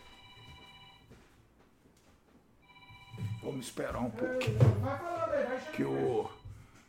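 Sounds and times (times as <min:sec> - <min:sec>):
telephone ringing with steady electronic trill: 0:00.0 - 0:01.2, 0:02.6 - 0:04.0, 0:05.7 - 0:06.6
faint room noise: 0:00.0 - 0:06.8
speech: 0:03.4 - 0:06.4.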